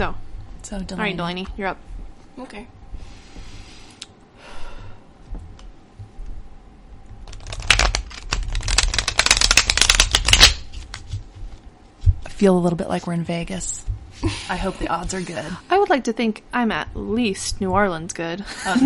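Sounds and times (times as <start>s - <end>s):
speech: 0.0s - 3.2s, 12.4s - 18.8s
deck of cards being shuffled with rapid riffling clicks: 7.2s - 11.3s.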